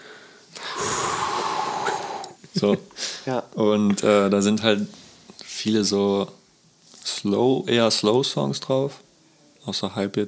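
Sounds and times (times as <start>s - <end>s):
voice imitating howling snowstorm wind with breathy whooshing exhale: 0.7s - 2.4s
laughter: 2.4s - 3.0s
speech: 2.6s - 5.0s, 5.6s - 6.4s, 7.2s - 10.2s.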